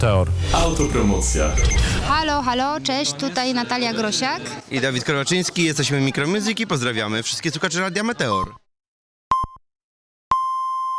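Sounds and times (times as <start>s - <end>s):
speech: 0.0s - 8.6s
radio hourly time signal pip: 0.4s - 2.7s.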